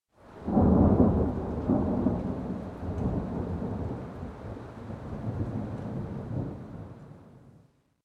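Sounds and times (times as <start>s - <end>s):
distant thunder: 0.4s - 7.5s.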